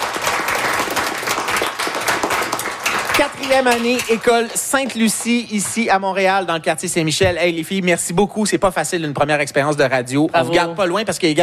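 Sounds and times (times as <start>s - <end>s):
group applauding loudly: 0.0s - 6.1s
speech: 3.2s - 11.4s.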